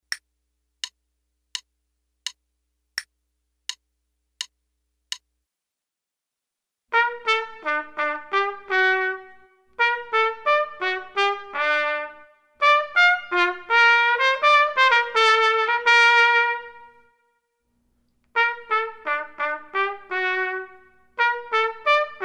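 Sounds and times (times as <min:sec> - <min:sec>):
trumpet playing an allemande: 0:06.9 - 0:17.2, 0:18.3 - 0:22.2.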